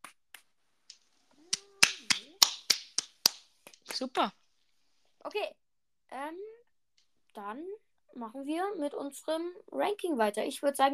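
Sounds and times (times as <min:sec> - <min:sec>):
hand clapping: 0:00.0 - 0:04.0
speech: 0:04.0 - 0:04.4, 0:05.2 - 0:06.6, 0:07.4 - 0:10.9.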